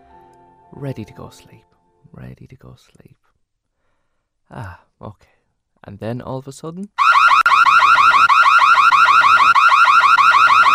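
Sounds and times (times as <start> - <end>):
speech: 0.7 - 3.2, 4.5 - 7.2
house alarm electronic siren: 7.0 - 10.7.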